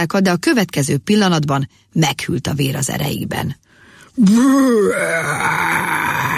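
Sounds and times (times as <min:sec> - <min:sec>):
speech: 0:00.0 - 0:03.6, 0:04.2 - 0:06.3
creature-like bellowing groan: 0:04.2 - 0:06.3.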